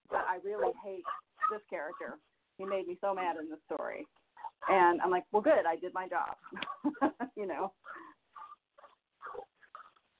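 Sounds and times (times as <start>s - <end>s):
dogs barking at home: 0.0s - 2.9s, 7.8s - 10.0s
speech: 1.8s - 8.0s.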